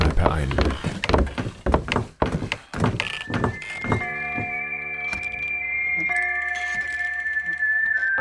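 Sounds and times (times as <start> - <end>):
heavy wooden thumps and clatters: 0.0 - 4.6
speech: 0.2 - 1.0
pub swinging door squeaking: 2.4 - 8.1.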